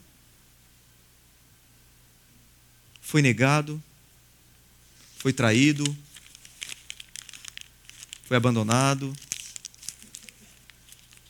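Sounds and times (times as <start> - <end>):
speech: 3.1 - 3.9, 5.2 - 6.1, 8.3 - 9.3
sheet of paper being crumpled: 4.9 - 11.2.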